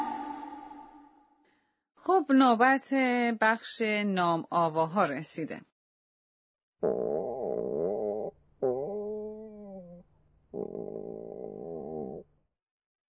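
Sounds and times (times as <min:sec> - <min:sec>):
speech: 0:02.1 - 0:05.7
stomach growling from hunger: 0:06.8 - 0:10.0, 0:10.6 - 0:12.3.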